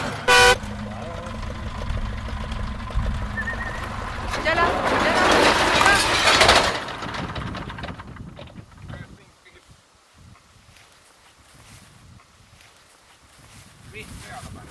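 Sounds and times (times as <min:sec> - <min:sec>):
short loud vehicle horn honk: 0:00.0 - 0:00.7
rush of machinery noise: 0:00.0 - 0:08.1
engine rumble: 0:00.0 - 0:09.1.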